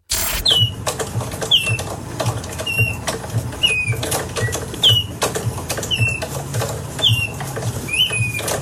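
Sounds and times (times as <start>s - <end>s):
hand-cranked mechanical bird toy chirping: 0.0s - 1.9s, 2.6s - 3.0s, 3.6s - 5.2s, 5.8s - 6.3s, 7.0s - 8.5s.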